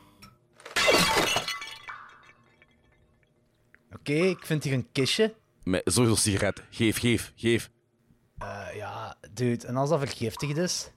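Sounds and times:
glass deliberately smashed: 0.6 - 3.0
speech: 4.0 - 7.8, 8.4 - 10.9.

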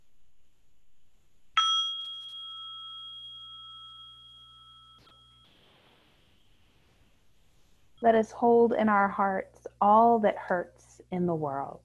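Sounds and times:
meditation chime ringing with a clear bright tone: 1.6 - 6.7
speech: 8.0 - 11.8.

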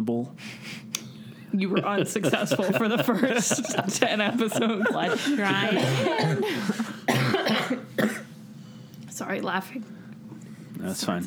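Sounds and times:
speech: 0.0 - 0.8, 1.5 - 6.9, 9.2 - 10.0, 10.8 - 11.2
laughter: 1.5 - 7.1
person coughing harshly: 2.2 - 8.3.

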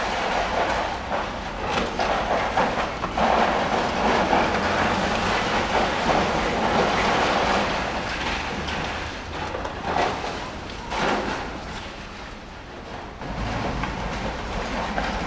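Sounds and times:
rattling debris: 0.0 - 15.2
sharper crashes and clatters: 0.0 - 15.2
grinding machinery of building demolition in Berlin: 13.2 - 15.2.

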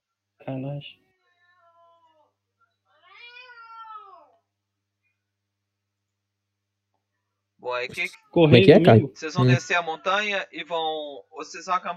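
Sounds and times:
speech: 0.4 - 1.1, 7.7 - 11.9
cat meowing: 3.0 - 4.3.

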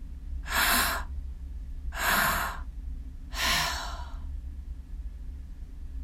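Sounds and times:
deep breathing in with short exhales through the mouth: 0.4 - 1.1, 1.9 - 2.7, 3.3 - 4.3.

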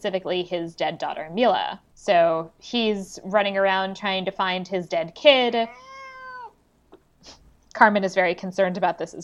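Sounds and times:
speech: 0.0 - 5.9, 7.2 - 9.2
cat's drawn-out plaintive meow: 5.6 - 6.6.

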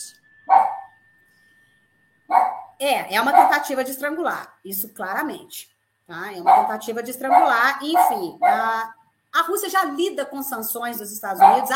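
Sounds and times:
dog barks: 0.5 - 0.9, 2.3 - 3.7, 6.4 - 8.9, 11.3 - 11.7
speech: 2.8 - 11.7.

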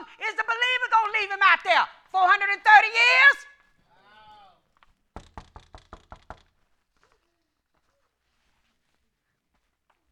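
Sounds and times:
speech: 1.2 - 3.5
firm knocking on a door: 5.1 - 6.6.

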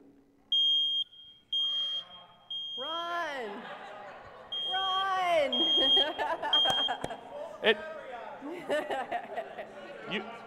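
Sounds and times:
new smoke detector with battery being tested beeping: 0.5 - 3.3, 4.5 - 7.3
laughter: 3.2 - 10.4
speech: 7.6 - 8.0, 8.7 - 9.4, 10.1 - 10.4.

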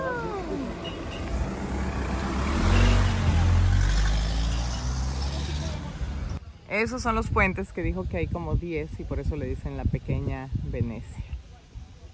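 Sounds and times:
car engine roaring as the car drives past: 0.0 - 6.4
speech: 6.8 - 11.3.

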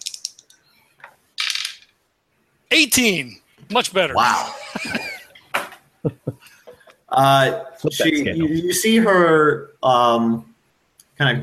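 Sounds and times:
dice being rolled: 0.0 - 0.5, 1.4 - 1.9
speech: 2.8 - 5.0, 6.0 - 6.2, 7.1 - 10.5, 11.2 - 11.4
laughter: 4.1 - 5.4, 6.1 - 8.4.

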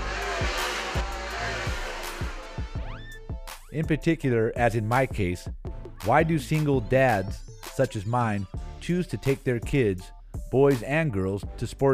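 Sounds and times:
race cars burning high-octane fuel roaring around a racetrack: 0.0 - 3.1
rising race car engine whine: 0.0 - 3.5
speech: 3.8 - 11.9.

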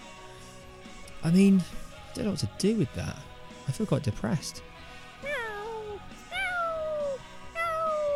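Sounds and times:
speech: 1.2 - 4.8
person imitating a cat meowing: 5.2 - 8.1.

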